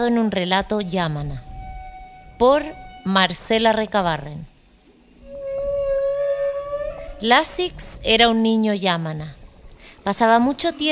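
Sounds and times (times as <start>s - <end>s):
speech: 0.0s - 1.5s, 2.4s - 4.5s, 7.2s - 9.4s, 10.0s - 10.9s
long rising whale call: 0.0s - 8.5s
low rumble: 0.0s - 10.9s.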